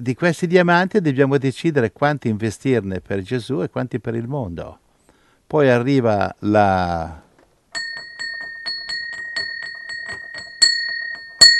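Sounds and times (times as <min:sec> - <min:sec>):
speech: 0:00.0 - 0:04.8, 0:05.5 - 0:07.2
bell ringing with a sustained shimmering tone: 0:07.7 - 0:11.5.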